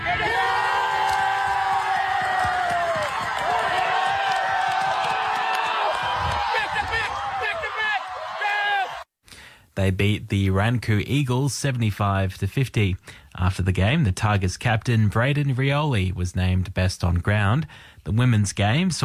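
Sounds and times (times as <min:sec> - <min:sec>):
loud whoops and scattered high yells: 0:00.0 - 0:09.0
large crowd cheering and shouting at a football grand final: 0:00.0 - 0:09.1
speech: 0:09.8 - 0:19.0.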